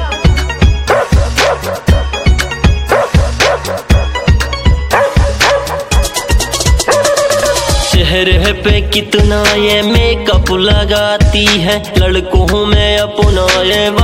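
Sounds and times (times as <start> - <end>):
music with a driving beat: 0.0 - 14.0
dog barking and yipping: 0.8 - 2.0, 2.9 - 4.3, 4.9 - 7.8
speech: 8.2 - 14.0.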